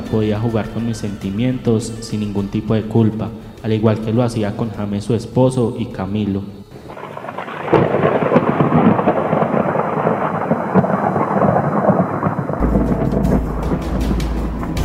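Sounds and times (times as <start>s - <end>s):
speech: 0.1s - 6.6s
steady heavy rain pouring down: 6.7s - 14.8s
rumbling thunder: 6.8s - 14.8s.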